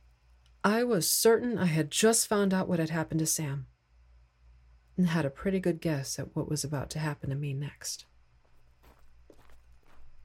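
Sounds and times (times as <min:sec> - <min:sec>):
speech: 0:00.6 - 0:03.7, 0:05.0 - 0:08.1
slow footsteps approaching: 0:08.4 - 0:10.2.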